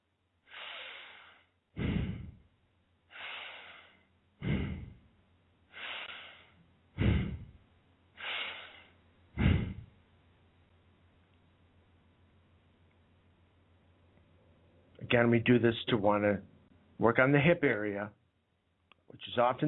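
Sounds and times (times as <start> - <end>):
slow deep breathing: 0.4 - 2.5, 3.1 - 5.1, 5.7 - 10.0
speech: 15.1 - 18.2, 19.1 - 19.6.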